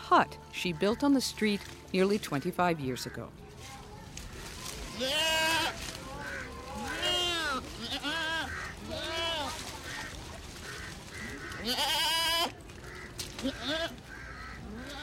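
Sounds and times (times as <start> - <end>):
speech: 0.1 - 3.4, 5.0 - 5.8, 11.6 - 12.0
goats bleating: 4.7 - 15.0.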